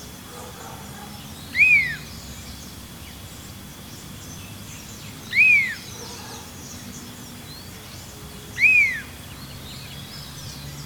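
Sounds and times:
low background noise: 0.0s - 10.8s
large elaenia Elaenia spectabilis calling with arched whistled notes: 1.5s - 2.1s, 5.3s - 5.9s, 8.6s - 9.1s.

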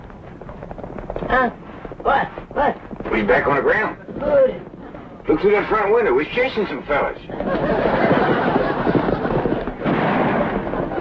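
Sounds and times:
speech: 1.3s - 4.7s, 5.3s - 8.6s
laughter: 7.3s - 9.8s
heavy gunfire during a chase: 9.8s - 11.0s.

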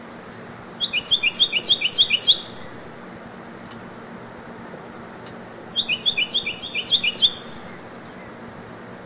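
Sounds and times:
Carolina wren singing: 0.7s - 2.9s, 5.7s - 8.5s.

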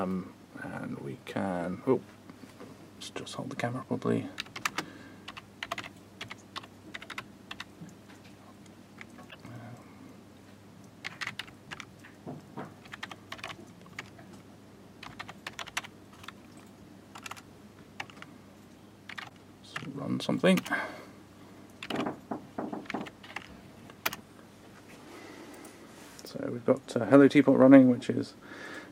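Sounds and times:
speech: 0.0s - 2.2s, 3.0s - 4.5s, 20.4s - 21.0s, 26.7s - 28.7s
faint steady hum: 0.0s - 28.8s
USB computer keyboard keystrokes clicking while logging in: 4.4s - 7.7s, 11.0s - 11.9s, 12.8s - 14.2s, 15.0s - 16.4s, 17.1s - 17.4s, 18.0s - 18.3s, 19.1s - 19.9s, 21.8s - 22.2s, 22.8s - 24.2s.

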